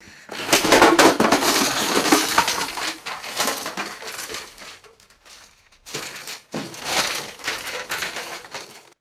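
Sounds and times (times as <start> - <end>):
hollow plastic PVC pipes knocked over: 0.2 - 8.9.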